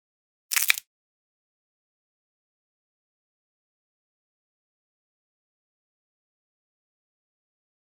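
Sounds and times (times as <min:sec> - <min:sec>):
branch breaking: 0:00.5 - 0:00.8.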